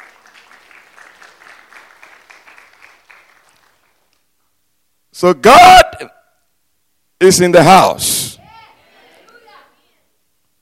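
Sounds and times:
crowd applauding in a large room: 0.0s - 4.1s
speech: 5.2s - 6.2s, 7.2s - 8.3s.

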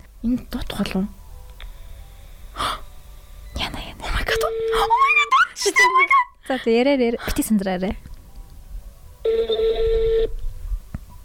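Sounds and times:
low hiss: 0.0s - 11.2s
speech: 0.2s - 1.2s, 6.5s - 8.1s
telephone ringing with an incoming call: 4.3s - 5.2s, 9.2s - 10.3s.

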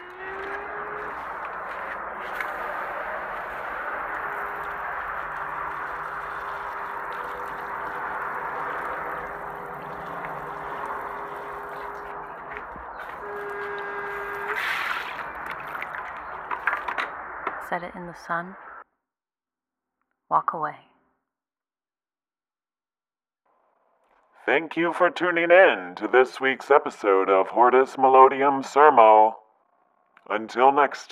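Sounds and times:
water poured steadily into a potted cactus: 2.2s - 16.9s
speech: 17.7s - 18.6s, 20.5s - 20.9s, 24.5s - 29.4s, 30.3s - 31.1s.

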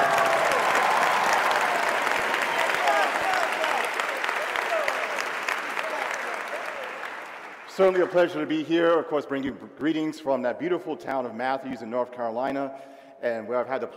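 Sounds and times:
large audience applause: 0.0s - 8.4s
speech: 7.8s - 13.9s.

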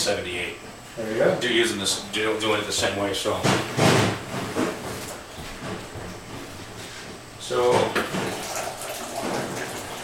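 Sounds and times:
speech: 0.0s - 4.5s, 7.5s - 8.0s
water pouring into wine must: 8.2s - 10.0s.

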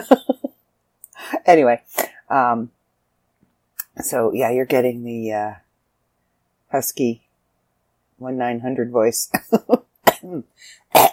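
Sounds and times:
speech: 0.0s - 0.3s, 1.5s - 2.8s, 4.0s - 5.6s, 6.7s - 7.2s, 8.2s - 11.1s
person coughing: 10.0s - 11.1s
faint wheezy breath: 10.6s - 10.9s.

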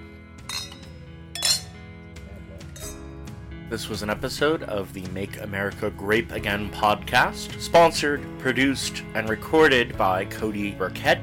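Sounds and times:
wine glasses of sparkling Catawba clinking in a toast: 0.4s - 1.8s, 2.7s - 3.0s
speech: 3.7s - 11.2s.

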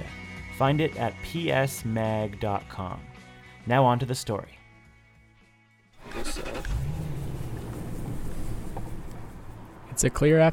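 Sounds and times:
speech: 0.6s - 4.6s, 10.0s - 10.5s
truck engine rumbling on a dirt road: 6.0s - 10.5s
vehicle rattling over a bumpy dirt road: 6.0s - 10.5s.

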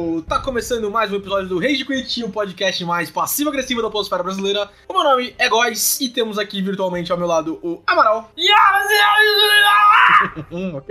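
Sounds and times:
speech: 0.0s - 10.8s
person screaming a war cry imitating a dying warrior: 8.4s - 10.4s.

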